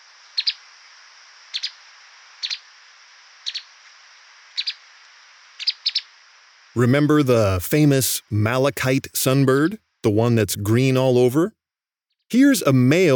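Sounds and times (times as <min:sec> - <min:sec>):
steady faint hiss: 0:00.0 - 0:11.5
streaked spiderhunter calling in Thailand with sharp high doubled chips: 0:00.4 - 0:00.6, 0:01.6 - 0:01.8, 0:02.4 - 0:02.6, 0:03.4 - 0:03.7, 0:04.6 - 0:04.8, 0:05.6 - 0:06.1
speech: 0:06.8 - 0:11.6, 0:12.3 - 0:13.1.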